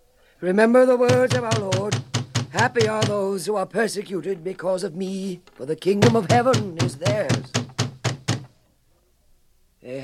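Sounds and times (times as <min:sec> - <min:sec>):
speech: 0:00.4 - 0:07.6, 0:09.8 - 0:10.0
guards pounding heavy knocks on a wooden door: 0:01.1 - 0:03.3, 0:06.0 - 0:08.6.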